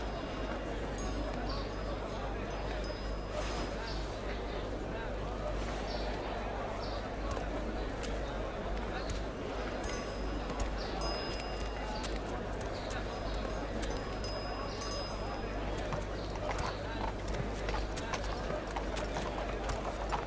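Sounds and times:
murmuring voices in a busy outdoor scene: 0.0 - 20.2
horse hooves clip-clopping: 7.2 - 20.2.

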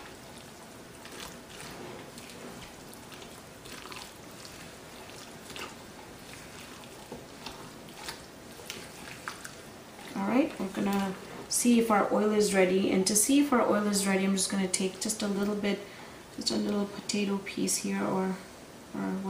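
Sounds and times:
batter being mixed in a bowl: 0.0 - 13.2
speech: 11.6 - 19.2.

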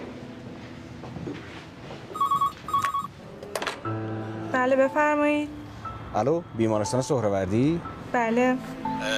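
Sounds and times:
telephone ringing with an electronic ring tone: 2.1 - 3.1
speech: 4.6 - 9.1.

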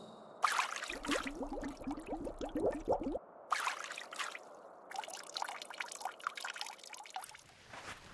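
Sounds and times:
water pouring and gurgling into a water skin: 0.4 - 7.5.

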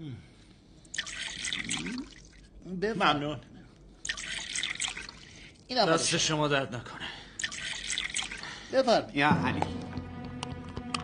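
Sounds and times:
water pouring into a glass: 0.9 - 2.5, 4.0 - 5.6, 7.4 - 8.6
speech: 2.8 - 3.5, 5.7 - 7.1, 8.7 - 9.8.

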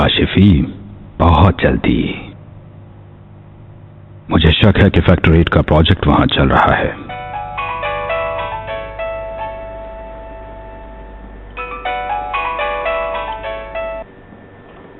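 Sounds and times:
speech: 0.4 - 2.3, 4.3 - 7.2
melodic electronic phone ringtone: 7.1 - 14.1.

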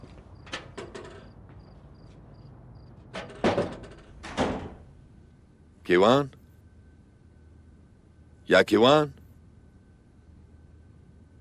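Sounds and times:
door clicking and rattling: 3.1 - 4.8
speech: 5.9 - 6.4, 8.5 - 9.2.

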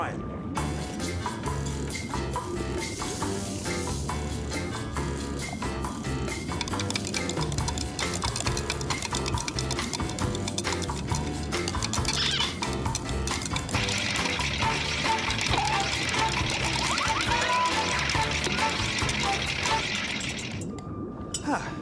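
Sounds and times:
soft music: 0.0 - 21.7
salt being stirred into colored water in a glass: 6.4 - 20.7.

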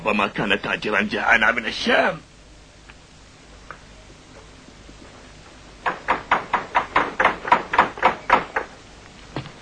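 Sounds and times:
speech: 0.0 - 2.3
firm knocks on a wooden door: 5.8 - 8.7.

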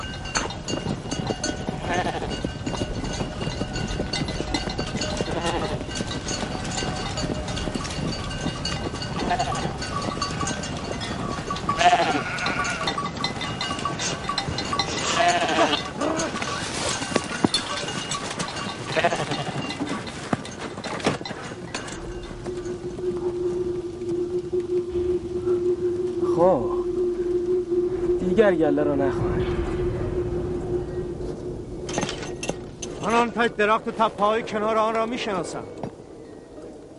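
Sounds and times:
constant rustling background: 0.0 - 36.9
flock of sheep bleating outdoors near a tree and hill: 11.8 - 13.0, 15.0 - 16.3, 18.9 - 19.6
speech: 28.5 - 29.3, 33.4 - 35.8.

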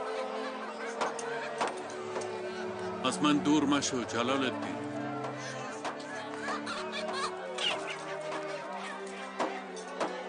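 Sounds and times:
laughter: 0.0 - 3.0, 5.0 - 10.2
speech: 3.0 - 4.9
several fowl clucking and squawking: 5.2 - 8.9.

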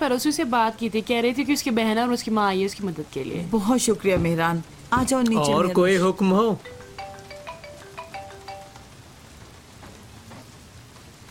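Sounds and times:
speech: 0.0 - 6.8
steady rain: 0.0 - 11.2
droplet taps: 4.0 - 5.4.

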